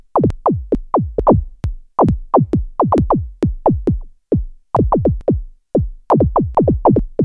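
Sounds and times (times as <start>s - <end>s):
Roland Juno-106 synthesizer resonance funk factory preset: 0.1s - 4.1s, 4.7s - 5.4s, 6.1s - 7.2s.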